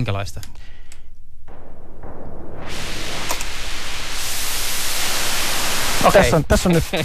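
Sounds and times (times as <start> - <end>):
speech: 0.0 - 0.7, 6.0 - 7.0
synthesizer noise generator producing white noise: 2.7 - 7.0.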